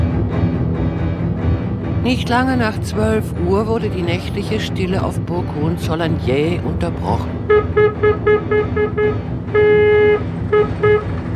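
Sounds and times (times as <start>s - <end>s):
low engine rumble of a rickety Wanderer three-seater car: 0.0s - 11.3s
speech: 2.0s - 11.3s
horn of a rickety Wanderer three-seater car honking: 7.4s - 11.2s.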